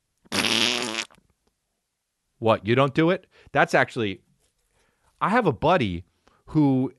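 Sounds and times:
loud fart: 0.3s - 1.2s
speech: 2.4s - 4.2s, 5.2s - 6.9s.

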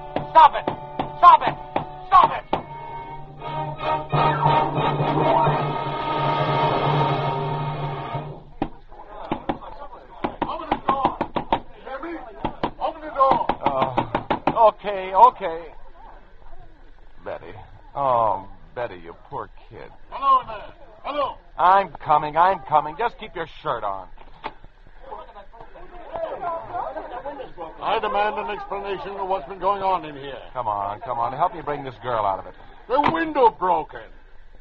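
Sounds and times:
droning background: 0.0s - 34.5s
loud pounding on a door: 0.1s - 2.7s, 8.6s - 9.6s, 10.2s - 11.7s, 12.4s - 14.6s
speech: 0.2s - 2.5s, 14.8s - 15.8s, 18.0s - 24.2s, 27.8s - 34.2s
laughter: 25.0s - 32.4s.

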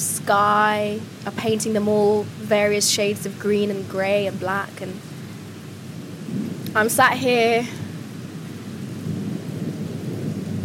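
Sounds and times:
rain hissing during a rainstorm: 0.0s - 10.6s
speech: 0.3s - 5.1s, 6.3s - 7.8s
thunder rumbling over mountains during a rainstorm: 5.9s - 10.6s.

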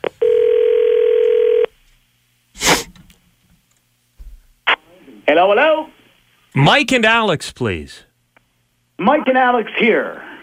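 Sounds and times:
telephone dial tone: 0.2s - 1.7s
speech: 5.3s - 6.0s, 6.6s - 8.1s, 9.0s - 10.2s.

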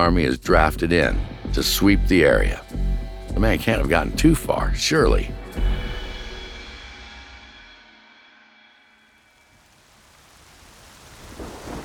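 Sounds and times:
speech: 0.0s - 2.7s, 3.4s - 5.7s
heavy rain hissing at night: 9.3s - 11.8s
thunder rumbling: 9.5s - 11.8s.

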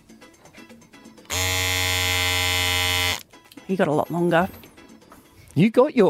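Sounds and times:
electric razor buzzing: 1.3s - 3.2s
speech: 3.7s - 4.6s, 5.6s - 6.0s.

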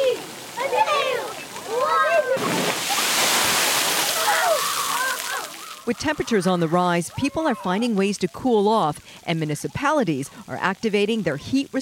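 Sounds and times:
excited voices and shrieks: 0.0s - 3.1s, 4.0s - 7.9s
rush of water crashing down from a tipping bucket onto people: 1.5s - 5.9s
speech: 5.9s - 11.8s.

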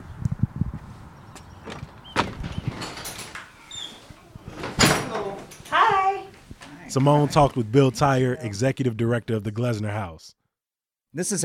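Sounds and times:
large heavy front door opening with clunks, scrape and rattling thud: 1.6s - 7.6s
speech: 6.9s - 10.4s, 11.1s - 11.4s.

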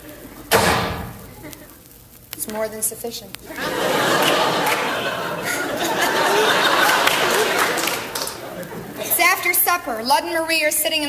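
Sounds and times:
door slamming: 0.5s - 1.2s
speech: 2.4s - 4.8s, 9.7s - 11.0s
laughter: 3.5s - 9.2s.

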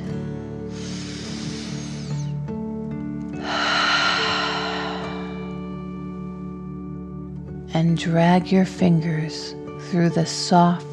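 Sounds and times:
gentle sustained music tones: 0.0s - 10.9s
slow deep breath in and out: 0.7s - 2.3s, 3.4s - 5.9s
speech: 7.8s - 10.9s.

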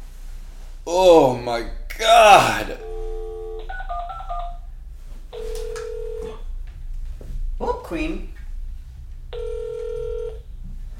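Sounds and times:
faint hum: 0.0s - 10.9s
speech: 0.9s - 2.8s, 7.9s - 8.3s
single longer steady telephone tone: 2.8s - 4.5s, 9.4s - 10.4s.

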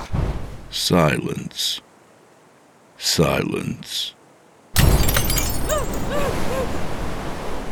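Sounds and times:
speech: 0.7s - 1.9s, 3.0s - 4.2s
car window glass shattering inward: 4.8s - 6.1s
glass shards tinkling as they scatter and fall: 4.8s - 6.5s.

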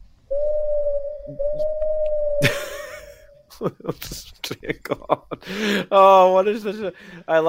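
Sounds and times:
person hooting in a steady pure tone: 0.3s - 3.5s
laughter: 2.4s - 5.9s
speech: 3.6s - 7.4s.

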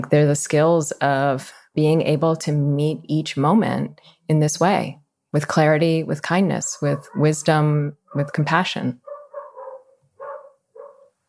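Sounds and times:
speech: 0.1s - 9.0s
dogs barking outdoors: 6.9s - 7.4s, 9.0s - 11.2s.

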